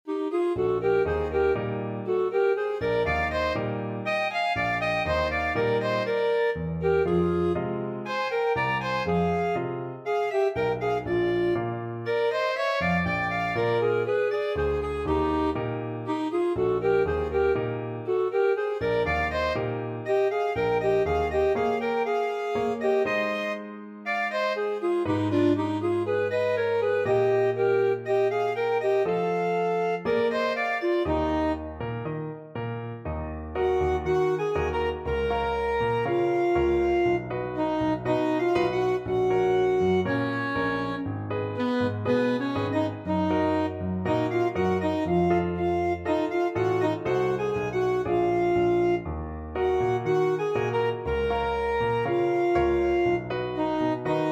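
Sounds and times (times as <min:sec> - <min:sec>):
saxophone in a duet: 0:00.0 - 0:32.1, 0:33.5 - 0:54.2
clarinet in a duet: 0:00.0 - 0:54.2.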